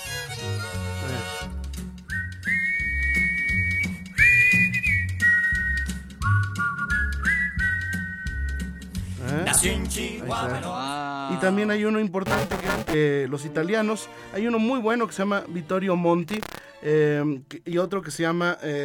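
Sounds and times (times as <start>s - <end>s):
two people whistling a melody: 2.0s - 9.1s
speech: 9.6s - 18.8s
steady bass beats: 12.3s - 13.0s.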